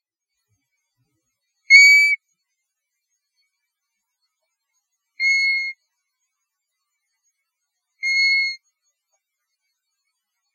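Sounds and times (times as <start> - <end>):
European golden plover whistling calls: 1.7 - 2.2, 5.2 - 5.7, 8.0 - 8.6.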